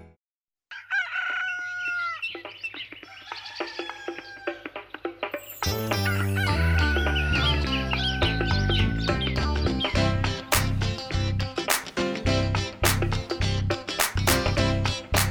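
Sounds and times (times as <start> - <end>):
rooster crowing: 0.7 - 2.3, 3.1 - 4.8, 6.4 - 9.1
full band playing: 5.4 - 9.1, 10.0 - 15.2.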